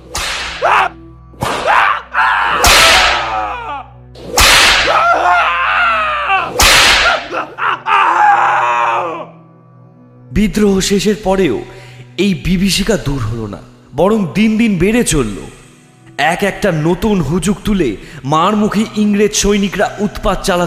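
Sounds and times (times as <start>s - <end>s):
whip lashes cracking against people tied to trees: 0.0s - 0.8s, 1.4s - 1.8s, 2.6s - 3.3s, 4.2s - 5.1s, 6.5s - 7.4s
anguished screams and groans of pain: 0.5s - 4.0s, 4.7s - 9.4s
speech: 10.4s - 15.6s, 16.2s - 20.6s.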